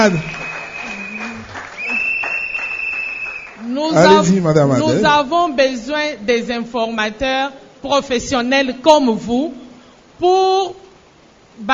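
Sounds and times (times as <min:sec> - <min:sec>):
speech: 0:00.0 - 0:00.4, 0:03.6 - 0:09.6, 0:10.2 - 0:10.8, 0:11.6 - 0:11.7
audience applause: 0:00.0 - 0:04.1.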